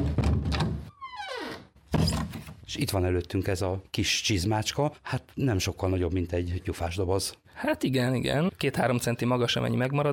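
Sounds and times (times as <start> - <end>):
restoration workshop door thump: 0.0 - 0.9
restoration workshop door creaking open: 0.0 - 2.7
speech: 2.7 - 10.1.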